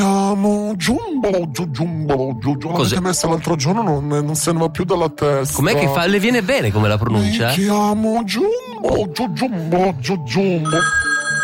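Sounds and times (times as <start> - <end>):
speech: 0.3 - 11.1
telephone ringing with a bright electronic tone: 10.6 - 11.4.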